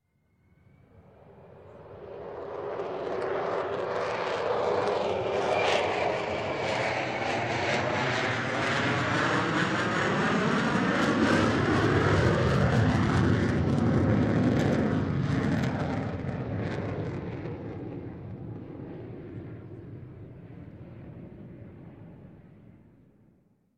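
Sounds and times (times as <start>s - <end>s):
VC10 K Mk 3 jet aircraft passing overhead: 0.1s - 23.2s.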